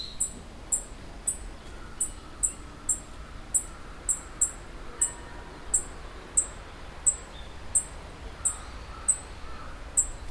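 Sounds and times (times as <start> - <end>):
black-faced bunting calling: 0.2 - 7.2, 7.8 - 10.2.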